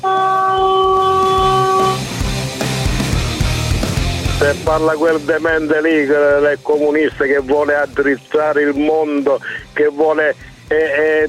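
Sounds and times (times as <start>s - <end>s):
truck horn blast: 0.0s - 2.3s
rumbling road noise: 0.6s - 5.7s
speech: 4.5s - 11.2s.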